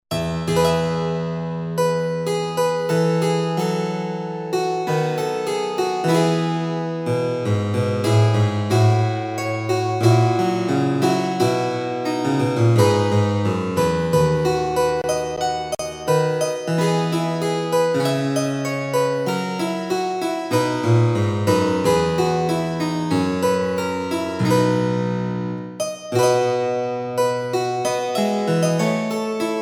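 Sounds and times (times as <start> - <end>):
English harpsichord allemande: 0.1 - 29.6.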